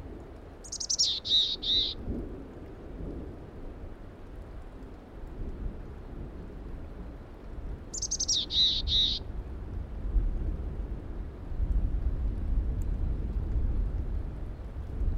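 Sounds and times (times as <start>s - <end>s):
rain: 0.0s - 15.1s
mountain chickadee giving raspy hoarse calls: 0.6s - 2.0s, 8.0s - 9.2s.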